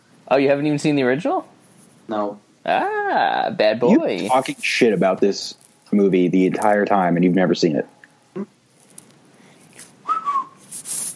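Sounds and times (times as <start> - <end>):
speech: 0.3 - 8.6
human whistling a single wavering note: 10.0 - 10.6
airy hiss as the whistler blows without much tone: 10.6 - 11.1.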